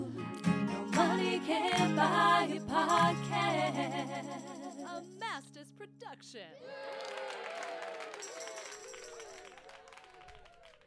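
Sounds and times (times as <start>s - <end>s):
speech: 1.4s - 8.7s
crowd applause: 6.6s - 10.8s
people whooping: 6.6s - 10.8s.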